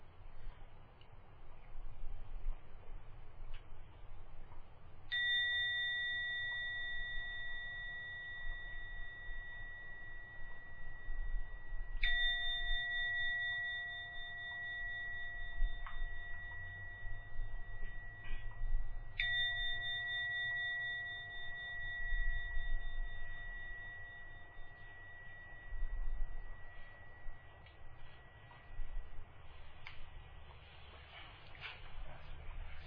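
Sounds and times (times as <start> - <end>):
soft low hum: 0.0 - 32.8
meditation gong struck with clear sustained metallic tone: 5.1 - 30.2.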